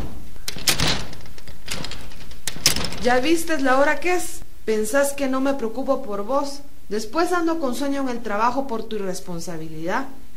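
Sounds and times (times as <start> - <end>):
front door latch and handle rattling: 0.4 - 3.7
speech: 3.0 - 10.2.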